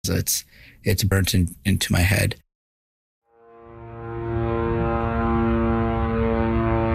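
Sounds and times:
speech: 0:00.0 - 0:02.4
military drones buzzing overhead: 0:03.5 - 0:06.9.

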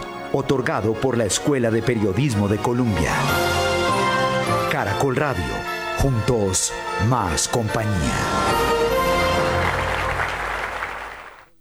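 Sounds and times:
speech: 0:00.3 - 0:03.6, 0:04.8 - 0:09.2
newsroom staff clapping: 0:08.2 - 0:11.5.

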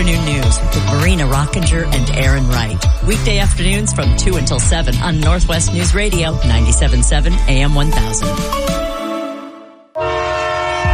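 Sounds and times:
low rumble: 0:00.0 - 0:08.5
speech: 0:01.2 - 0:08.8
Amtrak Cascades passenger train horn blasts: 0:09.2 - 0:10.9.

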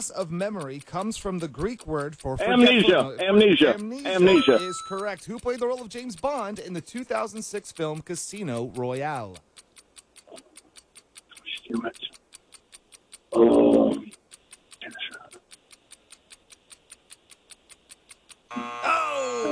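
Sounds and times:
speech: 0:00.0 - 0:09.5, 0:11.7 - 0:12.2, 0:13.3 - 0:14.0
quiz timer ticking: 0:00.0 - 0:19.4
harsh loud quiz buzzer: 0:18.5 - 0:19.4.

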